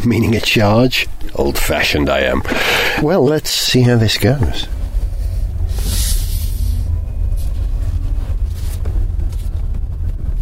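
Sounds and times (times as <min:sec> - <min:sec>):
speech: 0:00.0 - 0:04.8
steady low rumble of road and wind: 0:00.0 - 0:10.3
soft hissing swells: 0:04.5 - 0:08.8
electric car pulling away almost silently: 0:04.8 - 0:10.3.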